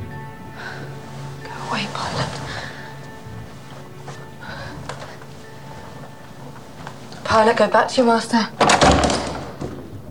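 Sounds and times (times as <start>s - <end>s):
speech: 1.7s - 2.6s, 7.4s - 9.1s
door latch releasing with a solid low thunk: 8.6s - 10.0s.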